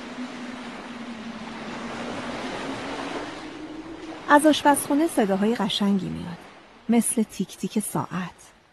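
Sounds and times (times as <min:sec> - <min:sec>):
strong wind: 0:00.0 - 0:06.9
stormy sea waves: 0:00.0 - 0:08.7
speech: 0:04.3 - 0:08.6.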